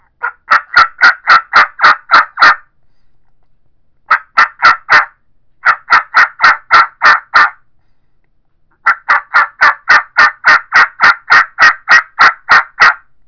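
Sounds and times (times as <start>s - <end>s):
turkey mouth call yelps: 0.2s - 2.7s, 4.1s - 7.6s, 8.8s - 13.0s.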